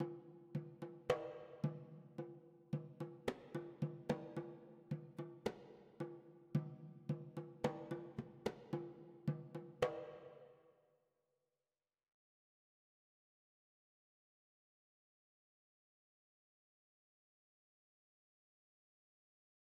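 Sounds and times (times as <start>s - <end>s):
drums: 0.0s - 10.3s.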